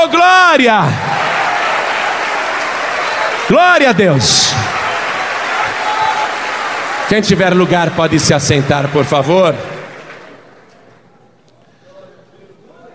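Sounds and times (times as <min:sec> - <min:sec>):
speech: 0:00.0 - 0:01.2, 0:03.5 - 0:04.8, 0:07.1 - 0:09.7
audience at a church service applauding: 0:00.9 - 0:10.9.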